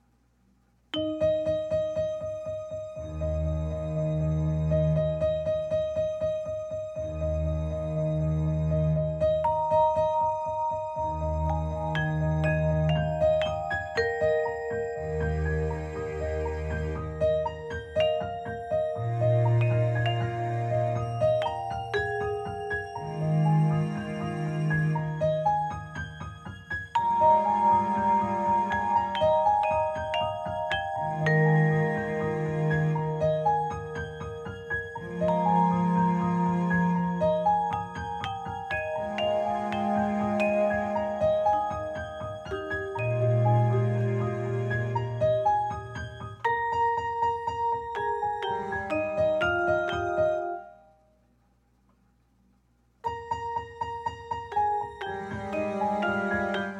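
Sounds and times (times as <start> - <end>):
MIDI arpeggio in free improvisation: 1.0 - 1.6, 9.4 - 16.6, 17.7 - 25.4, 27.0 - 45.2, 46.0 - 51.0, 54.5 - 56.7
MIDI vibraphone: 1.0 - 2.1, 9.4 - 50.8, 54.5 - 56.7
MIDI piano: 1.0 - 51.3, 53.0 - 56.7
MIDI string ensemble: 11.4 - 17.4, 19.0 - 21.4, 23.0 - 25.4, 27.0 - 30.0, 30.7 - 33.7, 35.0 - 37.5, 43.0 - 45.5, 55.0 - 56.7.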